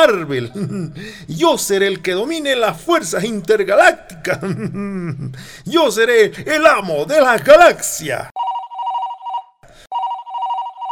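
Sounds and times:
speech: 0:00.0 - 0:08.3
laughter: 0:04.2 - 0:05.4
telephone ringing in loud trilling bursts: 0:08.4 - 0:10.9.

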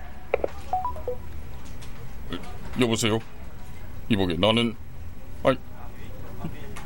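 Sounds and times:
telephone keypad dialing tones: 0:00.4 - 0:01.2
speech: 0:02.8 - 0:03.4, 0:04.1 - 0:04.8, 0:05.4 - 0:05.7.

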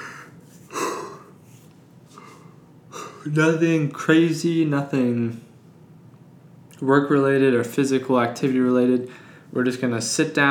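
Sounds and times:
person yawning: 0:00.0 - 0:01.4, 0:02.2 - 0:03.3
speech: 0:03.2 - 0:05.5, 0:06.8 - 0:10.4.

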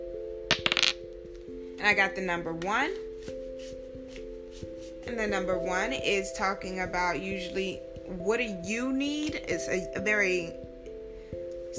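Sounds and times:
dice clattering across a hard surface: 0:00.5 - 0:01.0
speech: 0:01.8 - 0:03.8, 0:04.6 - 0:10.6.

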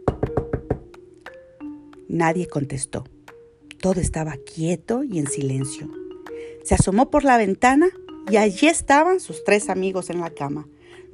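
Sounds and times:
knocking on a door: 0:00.0 - 0:00.9
speech: 0:02.1 - 0:03.2, 0:03.8 - 0:06.0, 0:06.6 - 0:10.8.

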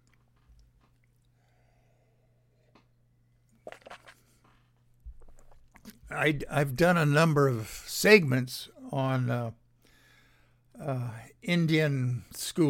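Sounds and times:
person sipping a drink: 0:03.5 - 0:06.0
speech: 0:06.2 - 0:09.6, 0:10.8 - 0:12.6.

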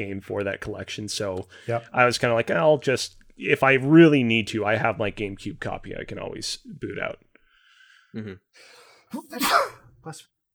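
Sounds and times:
speech: 0:00.0 - 0:07.3, 0:08.1 - 0:10.3
quick breathy inhales: 0:07.4 - 0:09.1
sneeze: 0:09.1 - 0:09.9.

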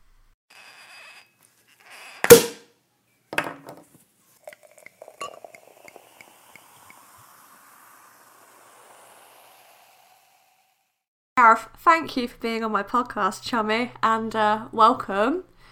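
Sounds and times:
scrape: 0:00.5 - 0:02.2
bright glassy clinks of glasses: 0:04.4 - 0:06.3
cork popping from a prosecco bottle: 0:04.4 - 0:07.6
soft fizzing hiss of bubbles as prosecco is poured: 0:04.4 - 0:11.0
speech: 0:11.4 - 0:15.5.

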